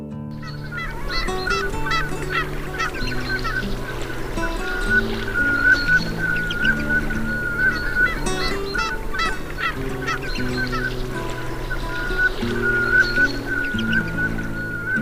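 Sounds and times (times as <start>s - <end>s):
velvet scoters calling: 0.3s - 14.9s.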